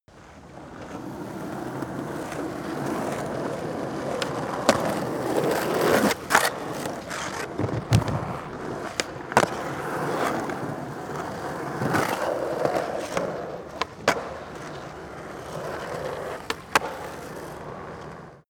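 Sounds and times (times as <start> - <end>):
skateboard driving: 0.1 - 18.4.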